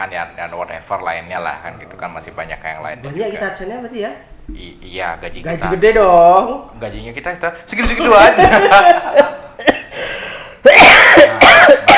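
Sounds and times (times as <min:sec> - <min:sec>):
speech: 0:00.0 - 0:09.7
laughter: 0:08.0 - 0:09.7
forceful coughs: 0:09.6 - 0:10.0, 0:10.6 - 0:11.9.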